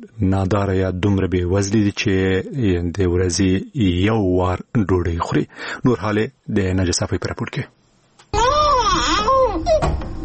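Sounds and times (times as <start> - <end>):
speech: 0.0 - 7.8
malnourished young child crying: 8.3 - 10.0.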